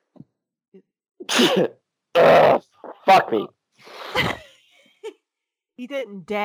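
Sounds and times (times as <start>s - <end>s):
speech: 0.8s - 2.5s, 3.1s - 4.4s, 5.8s - 6.4s
person sneezing into shirt: 1.2s - 4.5s
short halting intakes of breath before a sneeze: 3.8s - 4.4s.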